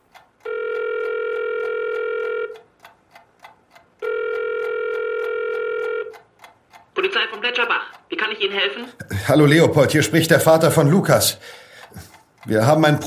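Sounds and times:
faint regular ticking: 0.0 - 13.0
telephone ringing tone on a call placed from a home: 0.4 - 2.6, 4.0 - 6.1
speech: 7.4 - 11.6, 12.5 - 13.0.

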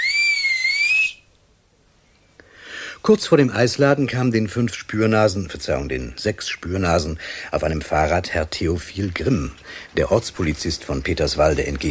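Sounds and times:
person whistling to call two children out of their house: 0.0 - 1.3
speech: 3.0 - 11.8.

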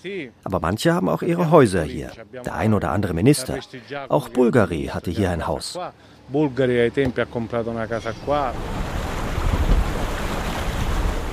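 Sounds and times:
speech: 0.0 - 9.0
wind and water rushing as a ship sails past small uninhabited islets: 7.7 - 11.3.

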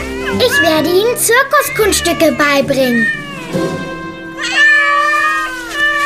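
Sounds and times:
kittens meowing: 0.0 - 6.0
speech: 0.4 - 3.9.

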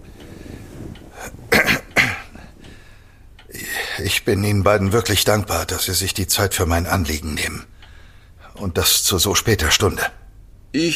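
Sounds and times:
man clearing his throat: 1.5 - 2.3
speech: 4.0 - 7.8, 8.6 - 10.9.

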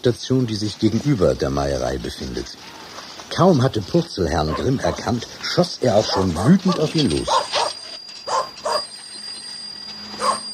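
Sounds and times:
speech: 0.0 - 2.8, 3.4 - 7.4
dog barking angrily: 4.4 - 5.1, 5.9 - 8.9, 10.2 - 10.5.

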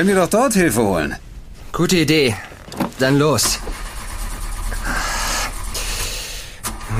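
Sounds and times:
speech: 0.0 - 3.8
accident-damaged car engine cranking but failing to start: 2.3 - 6.9.

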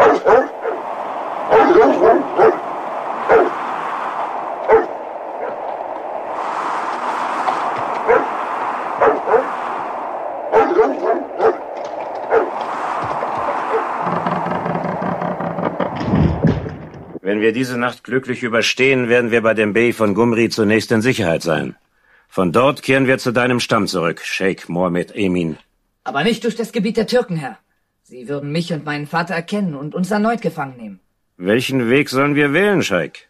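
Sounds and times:
dog barking in a courtyard: 0.0 - 0.8, 1.5 - 2.7, 3.3 - 3.6, 4.7 - 5.6, 8.0 - 8.4, 9.0 - 9.5, 10.5 - 11.7, 12.3 - 12.6
steady rushing background: 0.0 - 16.6
speech: 17.4 - 21.8, 22.4 - 27.6, 28.3 - 30.8, 31.4 - 33.2.

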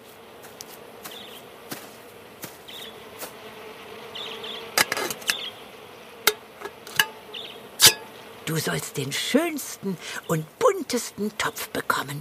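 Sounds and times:
bees buzzing: 0.0 - 12.2
speech: 8.5 - 12.2.

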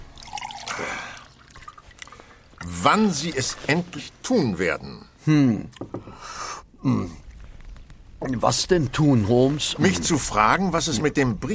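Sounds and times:
coffee pouring into a cup: 0.0 - 2.6
soft drips and trickles of coffee: 0.0 - 2.7
speech: 2.8 - 6.0, 6.8 - 7.2, 8.3 - 11.5.

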